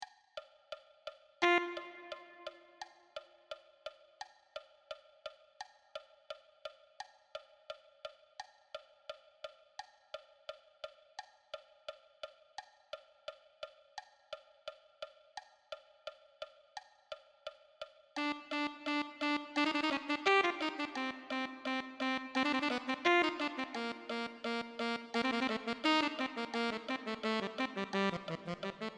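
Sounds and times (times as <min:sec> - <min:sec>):
alto saxophone: 0:01.4 - 0:02.8, 0:18.2 - 0:28.9.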